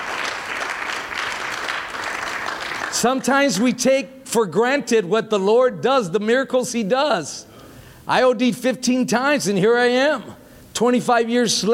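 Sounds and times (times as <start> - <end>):
church congregation applause: 0.0 - 3.4
speech: 3.0 - 11.7.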